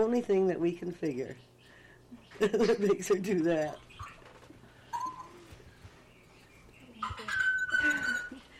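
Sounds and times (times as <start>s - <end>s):
speech: 0.0s - 1.5s, 2.3s - 3.9s
clattering bird noises: 1.0s - 8.5s
parrot imitating a metallic bell ring in a home: 4.9s - 5.4s, 7.0s - 8.4s.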